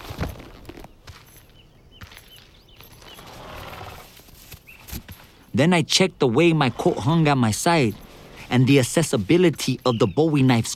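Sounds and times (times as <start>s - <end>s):
horse hooves clopping: 0.0s - 10.7s
horse whinnying: 3.2s - 4.2s
speech: 5.6s - 10.7s.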